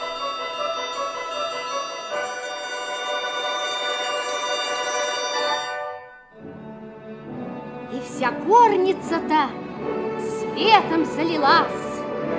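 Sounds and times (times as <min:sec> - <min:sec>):
silvery ringing chime: 0:00.0 - 0:06.4
speech: 0:08.2 - 0:11.8.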